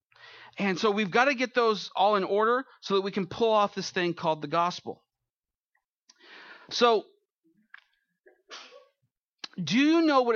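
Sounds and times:
speech: 0.6 - 5.0, 6.7 - 7.1, 9.6 - 10.3
sneeze: 8.3 - 9.0.

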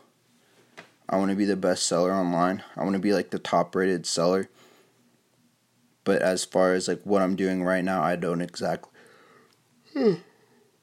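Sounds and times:
speech: 1.1 - 4.7, 6.1 - 8.9, 10.0 - 10.3
single short yawn: 9.9 - 10.6.

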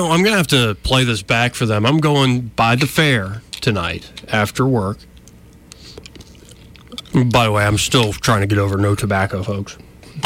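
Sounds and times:
speech: 0.0 - 5.1, 7.1 - 9.8
low hum: 0.0 - 10.2
person chewing gum: 5.2 - 7.4.

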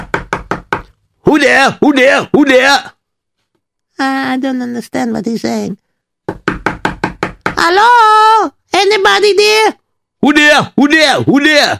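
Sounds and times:
knocking on a door: 0.0 - 0.9, 6.2 - 7.8
speech: 1.4 - 3.0, 4.0 - 6.4, 7.6 - 11.7.

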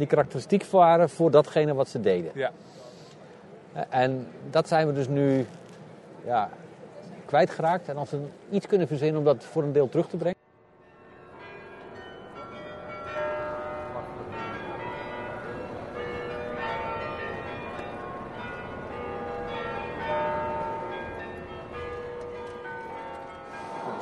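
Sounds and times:
speech: 0.0 - 2.8, 3.7 - 5.6, 6.2 - 6.6, 7.3 - 10.4
church bells pealing across the city of Groningen: 10.6 - 23.9.

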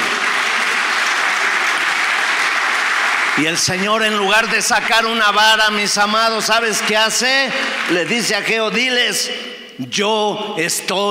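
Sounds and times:
large group applauding: 0.0 - 6.0, 6.6 - 8.7
speech: 3.4 - 11.1.

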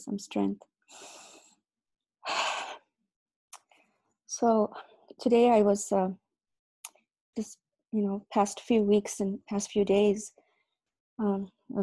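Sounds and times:
speech: 0.0 - 1.2, 4.4 - 6.2, 7.4 - 10.4, 11.2 - 11.8
deep breath from a nervous person: 0.9 - 1.6.

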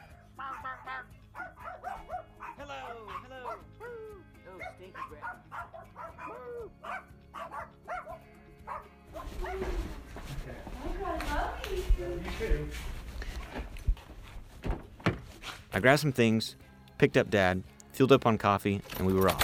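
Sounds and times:
puppies in Tuscaloosa barking and yipping: 0.0 - 10.1
puppies scuffling: 8.7 - 15.7
speech: 15.8 - 19.4.

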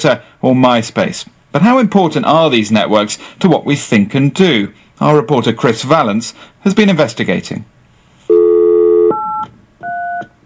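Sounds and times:
speech: 0.0 - 7.8
telephone dial tone: 8.3 - 10.3
telephone keypad beeps: 8.8 - 10.3.

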